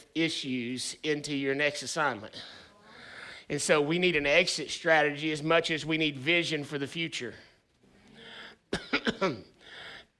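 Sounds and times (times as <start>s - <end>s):
speech: 0.2s - 2.6s, 3.5s - 7.5s, 8.7s - 9.5s
person breathing: 2.3s - 3.5s, 7.8s - 8.7s, 9.6s - 10.1s
person clearing throat: 8.7s - 9.6s.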